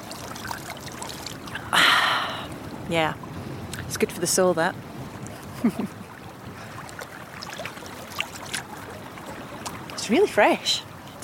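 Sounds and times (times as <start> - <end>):
water spilling back down into the stream: 0.0 - 4.1, 6.1 - 11.2
cold stream water trickling from a scooped handful: 0.0 - 4.4, 5.1 - 11.2
speech: 2.9 - 3.2, 3.9 - 4.9, 5.6 - 6.0, 10.1 - 10.9.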